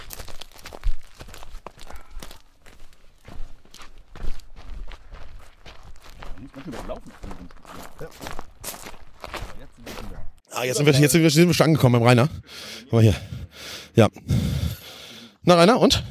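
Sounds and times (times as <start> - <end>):
footsteps walking over ground: 0.0 - 10.4
speech: 6.6 - 8.5, 10.6 - 13.4, 14.0 - 14.4, 15.5 - 16.0.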